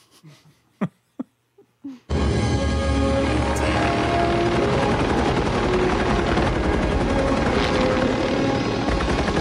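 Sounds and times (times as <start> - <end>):
helicopter carrying a passenger, rotor and engine noise in a film scene: 2.6 - 9.3.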